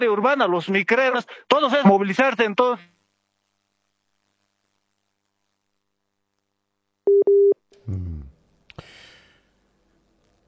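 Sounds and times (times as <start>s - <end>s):
speech: 0.0s - 3.0s, 7.1s - 8.3s
telephone line beeps after a dropped call: 7.1s - 7.6s.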